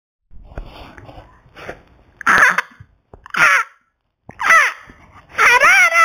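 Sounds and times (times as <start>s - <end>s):
macaw squawks: 2.2s - 3.8s, 4.4s - 6.0s.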